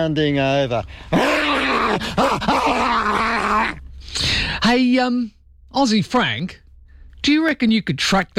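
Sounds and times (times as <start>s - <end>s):
speech: 0.0s - 6.6s, 7.2s - 8.3s
man running over a hill growling imitating a wild animal: 1.1s - 3.8s.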